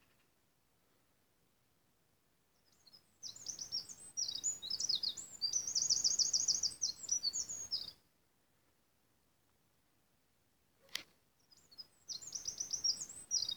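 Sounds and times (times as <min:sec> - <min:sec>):
Eurasian wren Troglodytes troglodytes song: 0:02.6 - 0:08.0, 0:11.4 - 0:13.5.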